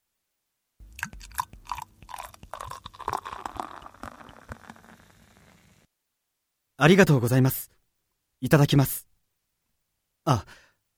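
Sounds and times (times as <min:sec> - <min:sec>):
beer glugging into a glass at an izakaya: 0:00.8 - 0:05.8
crackling fizz of beer foam rising: 0:01.2 - 0:05.9
speech: 0:06.8 - 0:07.7, 0:08.4 - 0:09.1, 0:10.3 - 0:10.6.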